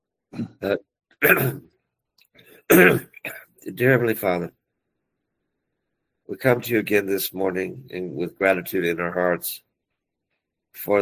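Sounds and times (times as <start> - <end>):
person clearing throat: 0.3 - 1.6, 2.7 - 3.6
person coughing: 0.4 - 1.6, 2.7 - 3.5
speech: 0.4 - 1.6, 2.7 - 3.1, 3.7 - 4.6, 6.3 - 9.7, 10.8 - 11.0.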